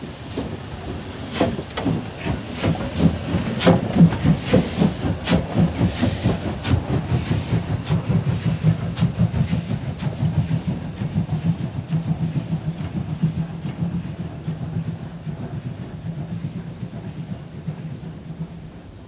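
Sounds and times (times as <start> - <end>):
DB 64 491 steam locomotive starting: 0.0 - 19.0.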